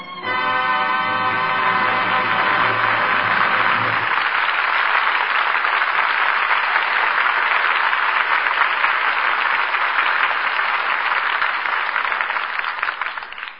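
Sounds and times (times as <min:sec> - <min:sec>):
large studio audience applause: 0:00.3 - 0:13.5.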